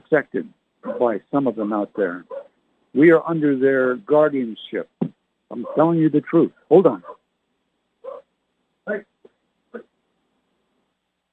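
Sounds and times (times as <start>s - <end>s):
speech: 0.1s - 4.9s, 5.5s - 7.2s, 8.8s - 9.1s
dog barking: 0.8s - 1.2s, 2.0s - 2.5s, 5.6s - 5.9s, 7.0s - 7.2s, 8.0s - 8.2s.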